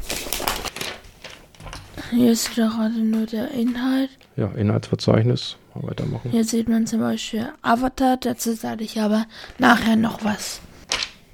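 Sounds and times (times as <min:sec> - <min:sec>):
video game magazine pages being turned: 0:00.0 - 0:02.6
speech: 0:02.1 - 0:10.7.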